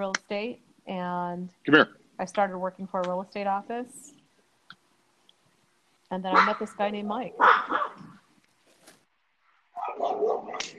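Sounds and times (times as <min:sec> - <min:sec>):
speech: 0:00.0 - 0:04.2, 0:06.1 - 0:08.1
dog barking and yipping: 0:06.3 - 0:06.7, 0:07.3 - 0:08.2, 0:09.8 - 0:10.7.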